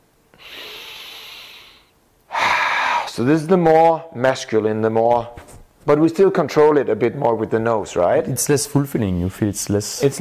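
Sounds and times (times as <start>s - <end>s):
slow relaxed breathing exercise: 0.3s - 3.2s
speech: 3.2s - 10.1s.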